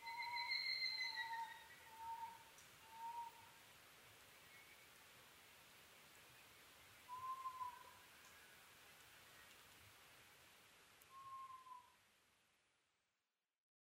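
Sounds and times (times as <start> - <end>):
Oriental scops owl hooting at night: 0.0 - 3.4, 7.1 - 8.0, 11.1 - 12.0
quiet hissing background: 0.0 - 13.3.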